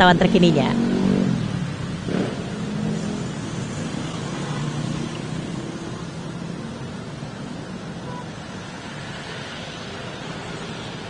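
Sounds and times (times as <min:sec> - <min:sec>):
speech: 0:00.0 - 0:00.9
vehicle accelerating past: 0:00.0 - 0:06.9
street traffic at a city intersection: 0:00.0 - 0:11.0.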